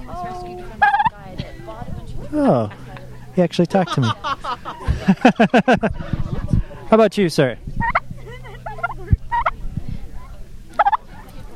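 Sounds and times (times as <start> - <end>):
low hum: 0.0 - 11.5
fowl calls: 0.6 - 1.2, 7.8 - 9.6, 10.7 - 11.3
laughter: 0.6 - 6.9, 8.0 - 9.6
turkey gobbling: 0.8 - 1.1, 7.8 - 9.6, 10.7 - 11.2
speech: 2.3 - 2.8, 3.4 - 4.3, 5.0 - 6.2, 6.9 - 7.8.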